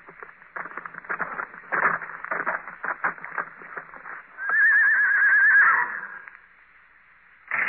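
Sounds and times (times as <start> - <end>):
horse hooves clip-clopping: 0.0 - 6.4
horse whinnying: 4.4 - 6.3.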